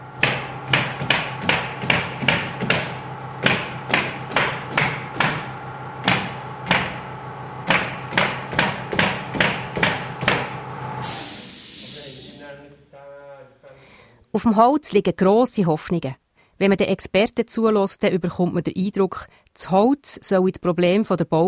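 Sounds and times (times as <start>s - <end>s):
steady mechanical hum: 0.0s - 14.3s
nail guns firing on a timber building site: 0.2s - 7.0s, 7.6s - 10.6s
hiss of air: 11.0s - 12.4s
speech: 14.4s - 21.4s.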